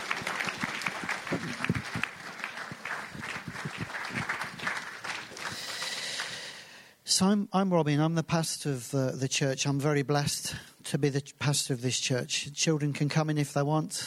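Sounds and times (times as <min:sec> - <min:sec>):
room full of people applauding: 0:00.0 - 0:06.6
speech: 0:07.2 - 0:14.0.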